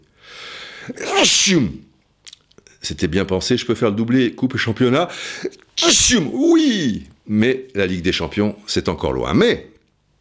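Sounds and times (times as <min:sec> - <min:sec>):
person sneezing: 0:00.8 - 0:01.8, 0:05.8 - 0:07.0
speech: 0:00.9 - 0:01.9, 0:02.8 - 0:09.7.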